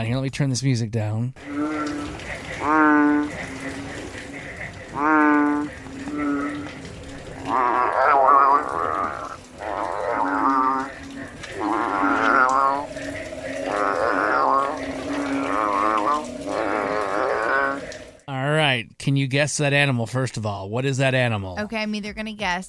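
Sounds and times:
speech: 0.0s - 1.7s, 2.6s - 3.4s, 19.3s - 22.6s
two bellowing frogs calling and fighting: 1.4s - 18.3s.

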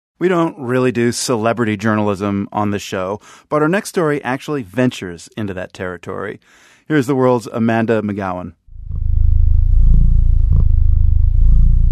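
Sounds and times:
speech: 0.2s - 9.0s
cat purring: 8.8s - 11.8s.

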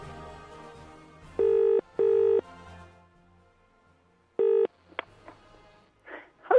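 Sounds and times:
telephone dialing tones: 1.4s - 2.4s, 4.4s - 4.7s.

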